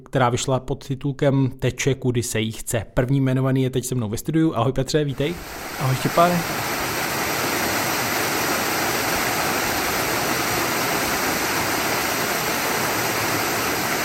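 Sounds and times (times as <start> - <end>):
speech: 0.1 - 6.8
river spilling over a small waterfall: 5.3 - 14.0.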